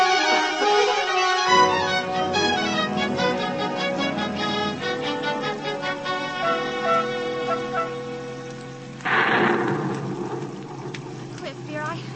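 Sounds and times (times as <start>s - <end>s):
heavy rain downpour: 0.0s - 12.1s
sustained tonal music: 0.0s - 12.1s
sudden loud rush of noise: 9.0s - 11.8s.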